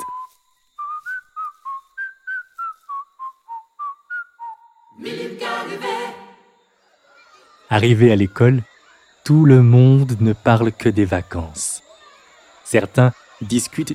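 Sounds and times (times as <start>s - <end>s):
person whistling a bouncy tune while walking along a road: 0.0s - 5.0s
speech: 5.0s - 6.2s, 7.7s - 8.7s, 9.3s - 11.8s, 12.7s - 13.9s.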